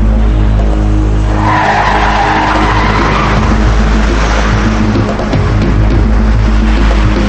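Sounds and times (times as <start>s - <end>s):
car engine roaring in an enclosed garage: 0.0s - 7.2s
car tires squealing in a garage: 1.2s - 5.4s.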